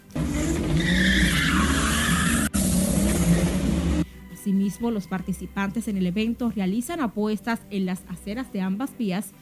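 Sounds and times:
car engine roaring and revving: 0:00.0 - 0:04.0
tires screeching from cars drag racing: 0:00.0 - 0:04.0
speech: 0:04.8 - 0:09.4.

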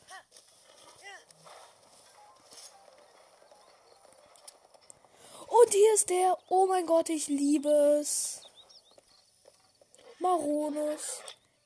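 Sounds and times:
horse hooves clip-clopping: 0:00.0 - 0:05.4, 0:08.4 - 0:10.2
speech: 0:05.7 - 0:08.4, 0:10.2 - 0:11.3.

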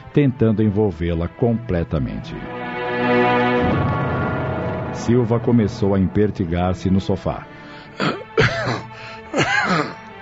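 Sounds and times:
speech: 0:00.2 - 0:03.8, 0:04.9 - 0:08.5
person coughing: 0:08.0 - 0:10.1.

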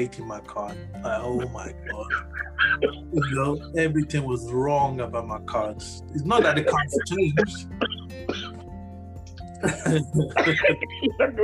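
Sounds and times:
speech: 0:00.0 - 0:08.5, 0:09.6 - 0:11.4
laughter: 0:01.1 - 0:04.2, 0:06.2 - 0:08.0, 0:09.6 - 0:11.4
person coughing: 0:06.3 - 0:08.6, 0:09.6 - 0:11.4.

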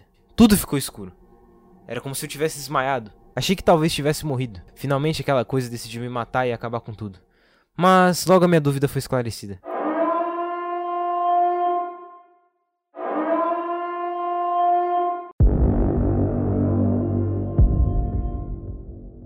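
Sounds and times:
speech: 0:00.4 - 0:01.2, 0:01.9 - 0:09.7
deep loud alarm siren: 0:09.6 - 0:12.4, 0:13.0 - 0:19.2.

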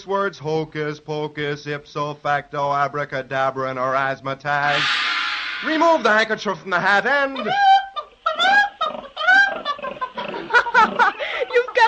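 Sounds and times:
speech: 0:00.0 - 0:07.8
laughter: 0:07.2 - 0:11.8
live pig oinking and squealing: 0:07.6 - 0:11.1.

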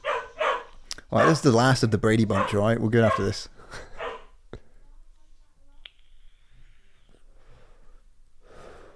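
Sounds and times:
female dog barking: 0:00.0 - 0:01.5, 0:02.3 - 0:03.4, 0:04.0 - 0:04.3
speech: 0:01.1 - 0:03.9.

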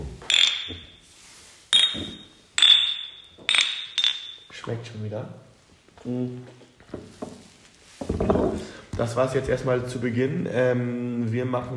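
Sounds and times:
beer glasses clinking in a toast in a kitchen: 0:00.2 - 0:01.0, 0:01.7 - 0:04.8
speech: 0:04.7 - 0:07.4, 0:08.6 - 0:11.7.

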